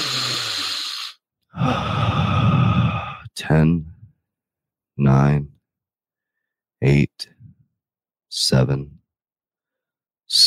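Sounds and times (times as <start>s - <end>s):
person taking a deep breath in during a guided meditation: 0.0s - 3.3s
speech: 3.5s - 3.9s, 5.0s - 5.5s, 6.8s - 7.4s, 8.4s - 9.0s.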